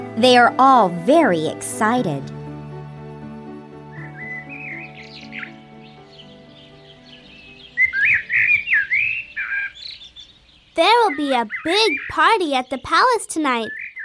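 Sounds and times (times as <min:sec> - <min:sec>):
speech: 0:00.2 - 0:02.4, 0:10.8 - 0:13.8
several birds chirping and tweeting: 0:03.7 - 0:14.0.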